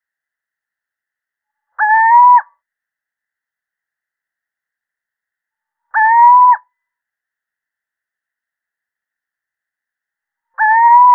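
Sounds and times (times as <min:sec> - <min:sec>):
male little owl uttering mellow upslurred hoots: 0:01.8 - 0:02.5, 0:05.9 - 0:06.6, 0:10.6 - 0:11.1.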